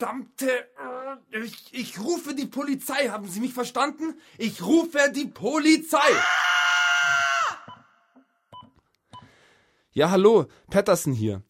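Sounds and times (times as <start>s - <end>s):
speech: 0.0s - 7.2s, 10.0s - 11.4s
old woman screaming in a stairwell: 6.1s - 7.7s.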